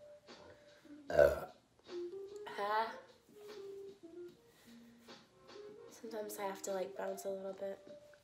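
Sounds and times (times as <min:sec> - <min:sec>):
person burping after drinking soda: 0:01.1 - 0:01.6
speech: 0:06.3 - 0:07.9.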